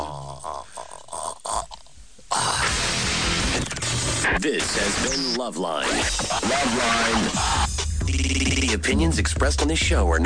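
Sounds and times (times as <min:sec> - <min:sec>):
man imitating a dying man's last gasp with his voice: 0:00.0 - 0:03.0
speech: 0:04.4 - 0:10.2.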